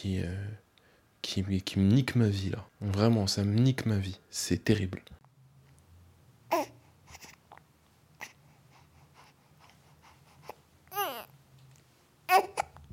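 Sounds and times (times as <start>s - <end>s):
speech: 0.0s - 0.6s, 1.2s - 5.2s
baby crying: 6.5s - 6.8s, 10.9s - 11.3s, 12.3s - 12.8s
baby babbling and fussing: 6.5s - 7.6s, 8.2s - 11.4s, 12.3s - 12.8s.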